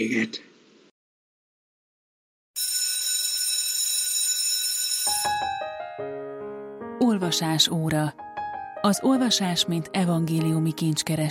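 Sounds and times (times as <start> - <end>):
speech: 0.0 - 0.5, 7.0 - 11.3
bright bell ringing: 2.6 - 6.0
chiming notes stepping in pitch: 4.3 - 6.1.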